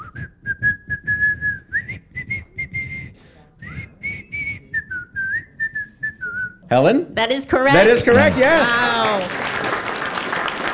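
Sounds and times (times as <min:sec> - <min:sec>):
person whistling a bouncy simple melody: 0:00.0 - 0:06.6
speech: 0:06.7 - 0:09.5.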